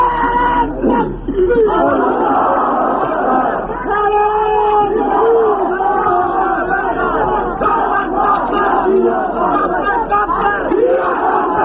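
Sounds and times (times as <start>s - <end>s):
large crowd chanting religious slogans in unison at a gathering: 0.0s - 11.6s.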